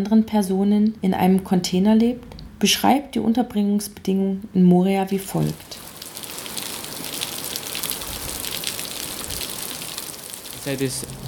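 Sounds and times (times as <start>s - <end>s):
speech: 0.0s - 5.8s, 10.6s - 11.2s
steady rain on a hard surface: 5.3s - 11.2s.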